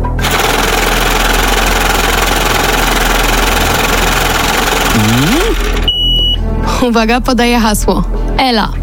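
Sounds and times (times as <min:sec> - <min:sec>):
lottery drawing machine whirring and rattling: 0:00.0 - 0:05.9
speech: 0:06.8 - 0:08.8.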